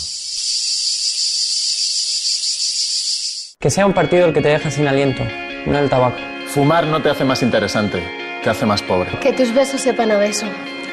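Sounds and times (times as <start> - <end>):
cicada buzzing: 0.0 - 3.6
speech: 3.6 - 10.9.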